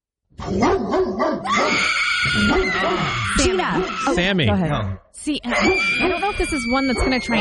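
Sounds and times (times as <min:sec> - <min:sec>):
speech: 0:00.5 - 0:07.3
pit bull barking with a warbling howl: 0:00.6 - 0:04.2, 0:05.5 - 0:07.3.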